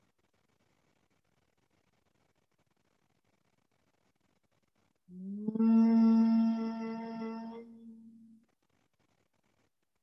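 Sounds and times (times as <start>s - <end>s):
person humming on exhale, humming bee breath: 5.2s - 8.4s.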